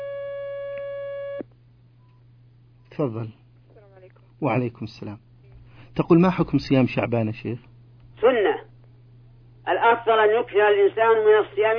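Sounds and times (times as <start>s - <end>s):
telephone line tone of an incoming call: 0.0s - 1.4s
speech: 3.0s - 3.4s, 4.4s - 5.2s, 6.0s - 8.4s, 9.9s - 11.7s.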